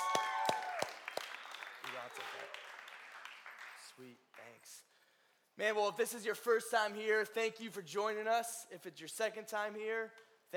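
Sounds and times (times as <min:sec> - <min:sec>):
audience applauding for a worship band: 0:00.0 - 0:04.6
speech: 0:02.0 - 0:02.7, 0:04.0 - 0:04.9, 0:05.6 - 0:10.5.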